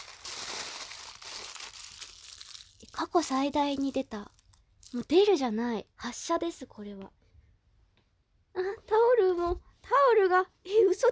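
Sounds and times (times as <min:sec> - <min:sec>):
aluminium foil being crumpled and put away: 0:00.0 - 0:05.1
speech: 0:03.0 - 0:07.2, 0:08.6 - 0:11.0.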